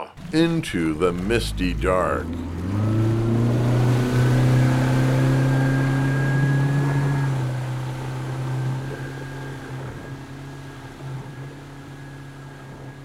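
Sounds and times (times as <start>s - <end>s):
outboard motor droning loudly and revving: 0.0s - 13.0s
speech: 0.3s - 2.6s.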